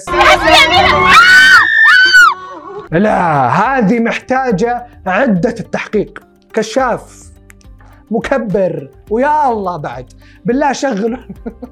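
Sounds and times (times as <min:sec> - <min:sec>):
laughter: 0:00.0 - 0:02.9, 0:11.1 - 0:11.7
several people screaming: 0:00.0 - 0:02.9
speech: 0:02.9 - 0:07.2, 0:08.1 - 0:11.7.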